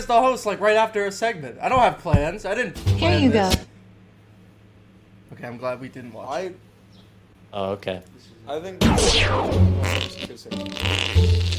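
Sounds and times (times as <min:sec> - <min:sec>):
speech: 0:00.0 - 0:03.7, 0:05.4 - 0:06.7, 0:07.5 - 0:11.5
buzzy fart sounds: 0:08.8 - 0:11.5.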